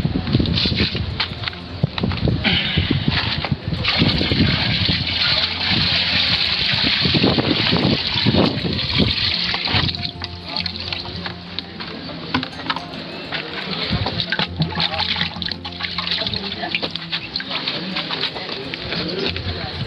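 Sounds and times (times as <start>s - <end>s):
wind: 0.0s - 19.8s
water poured into a biosand filter container: 3.2s - 11.1s, 13.6s - 19.3s.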